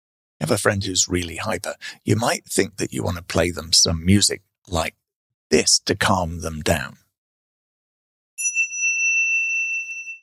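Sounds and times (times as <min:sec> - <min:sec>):
speech: 0:00.4 - 0:07.0
session timer bell ding: 0:08.4 - 0:10.2.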